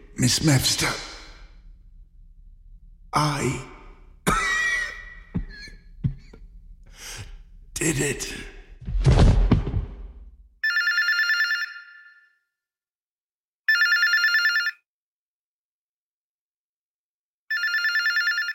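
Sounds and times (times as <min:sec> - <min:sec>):
low rumbling noise: 0:00.0 - 0:10.5
speech: 0:00.2 - 0:01.1, 0:03.2 - 0:03.7, 0:07.8 - 0:08.5
telephone ringing: 0:10.6 - 0:12.3, 0:13.7 - 0:14.8, 0:17.5 - 0:18.5.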